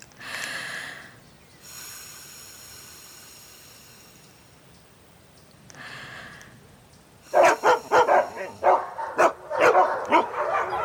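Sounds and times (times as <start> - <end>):
dog barking rapidly and loudly: 7.3 - 10.8.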